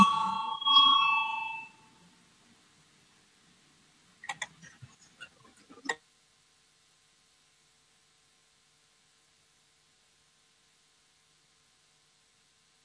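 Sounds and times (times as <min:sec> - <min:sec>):
parliament voting bell ringing: 0:00.0 - 0:01.8.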